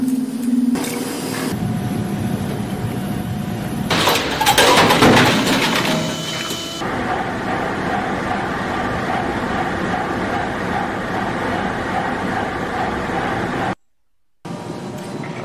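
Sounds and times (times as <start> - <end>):
factory machinery making extension cords clattering and whirring: 0.1 - 13.8.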